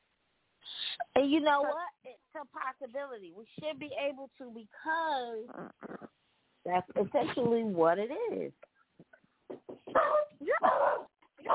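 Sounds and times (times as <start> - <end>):
speech: 1.2 - 8.7
dog barking and yipping: 9.9 - 11.5.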